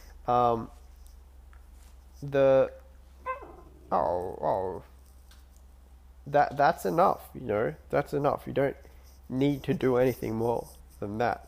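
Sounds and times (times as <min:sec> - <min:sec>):
speech: 0:00.3 - 0:00.8, 0:02.2 - 0:02.8, 0:03.9 - 0:04.9, 0:06.3 - 0:11.4
dog barking sharply: 0:03.3 - 0:03.7
dog giving higher whiny yelps: 0:03.3 - 0:04.0.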